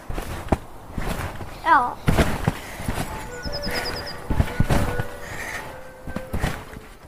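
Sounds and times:
birdsong chirping: 0.0s - 7.0s
children jumping on a trampoline in a garden: 0.0s - 7.0s
speech: 1.7s - 2.1s.

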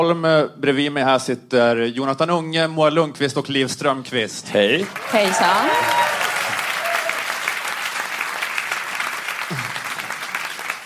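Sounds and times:
speech: 0.0s - 6.0s
live theatre audience in Stockholm applauding: 4.7s - 10.8s.

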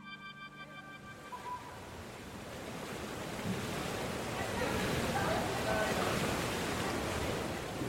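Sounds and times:
splashing water in an indoor swimming pool hall: 2.2s - 7.8s.

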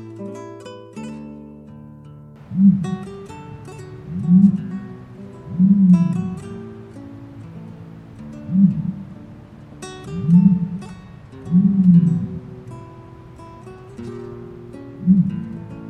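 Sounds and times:
ostrich booming with deep hollow resonant hoots: 2.4s - 6.7s, 7.3s - 9.2s, 10.2s - 12.4s, 15.0s - 15.5s
faint birdsong twittering: 2.4s - 15.8s.

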